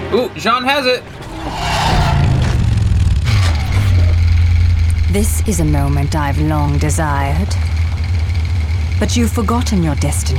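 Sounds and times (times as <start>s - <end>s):
speech: 0.1s - 1.6s, 5.1s - 7.7s, 9.0s - 10.3s
scraping and clattering video-game action noise: 0.9s - 7.1s
video-game motorcycle engine revving: 1.0s - 9.9s.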